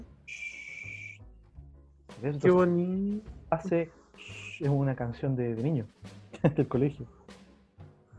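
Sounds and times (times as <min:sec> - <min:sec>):
barn owl hissing screech: 0:00.3 - 0:01.2, 0:04.2 - 0:04.7
speech: 0:02.2 - 0:04.0, 0:04.6 - 0:07.2
laughter: 0:06.4 - 0:06.8.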